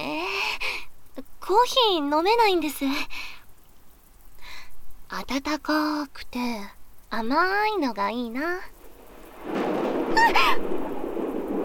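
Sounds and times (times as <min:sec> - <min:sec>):
steady rainfall: 0:00.0 - 0:11.6
speech: 0:01.5 - 0:03.3, 0:05.1 - 0:08.7, 0:10.2 - 0:10.9
loud rolling thunder during a rainstorm: 0:08.7 - 0:11.6.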